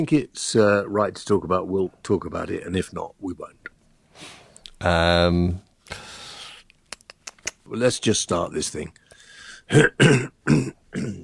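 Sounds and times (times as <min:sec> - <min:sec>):
speech: 0:00.0 - 0:06.1, 0:07.7 - 0:09.0, 0:09.7 - 0:11.2
harsh coughs: 0:09.7 - 0:11.2
throat clearing: 0:09.7 - 0:11.2.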